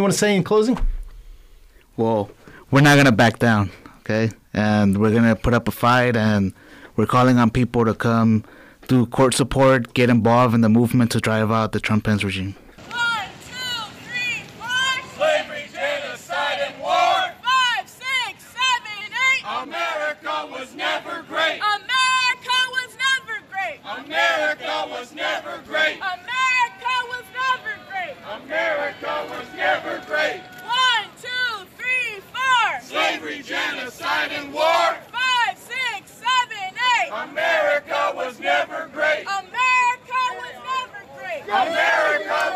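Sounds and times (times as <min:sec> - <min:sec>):
speech: 0:00.0 - 0:00.9, 0:02.0 - 0:12.6
protesters chanting while marching into a park: 0:12.8 - 0:42.5.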